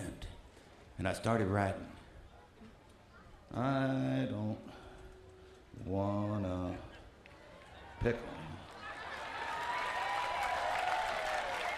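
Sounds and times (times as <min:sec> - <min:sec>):
faint crowd voices: 0:00.0 - 0:11.7
speech: 0:01.0 - 0:02.0, 0:03.5 - 0:04.8, 0:05.8 - 0:06.9, 0:08.0 - 0:08.6
audience clapping: 0:08.6 - 0:11.7.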